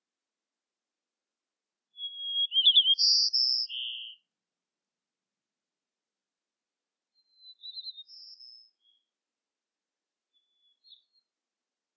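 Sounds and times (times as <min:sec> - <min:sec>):
White-crowned sparrow Zonotrichia leucophrys gambelii singing: 0:02.0 - 0:04.2, 0:07.2 - 0:09.1, 0:10.3 - 0:11.3.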